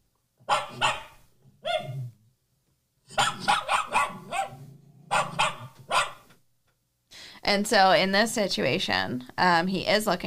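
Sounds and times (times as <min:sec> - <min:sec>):
dog request barking for attention: 0:00.5 - 0:02.0, 0:03.1 - 0:06.3
speech: 0:07.5 - 0:10.2.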